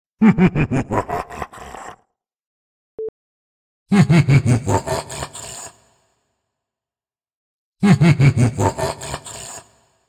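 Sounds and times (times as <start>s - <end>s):
evil demonic laughs with echoes: 0.2s - 2.1s, 3.9s - 5.5s, 7.8s - 9.7s.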